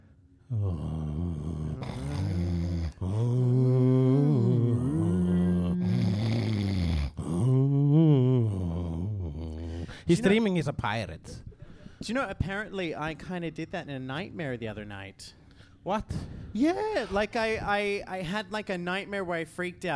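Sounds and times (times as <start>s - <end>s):
speech: 0.5s - 1.0s, 10.1s - 19.9s
person imitating a neighbour snoring loudly: 0.5s - 10.0s.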